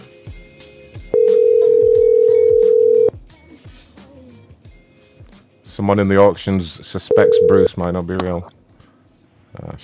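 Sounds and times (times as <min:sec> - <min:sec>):
telephone dial tone on a failed call: 0:01.2 - 0:03.1, 0:07.1 - 0:07.7
speech: 0:05.8 - 0:08.6, 0:09.6 - 0:09.8.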